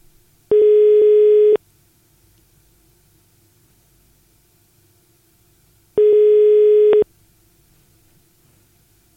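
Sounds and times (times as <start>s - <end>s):
telephone ringback tone: 0.5s - 1.6s, 6.0s - 7.0s.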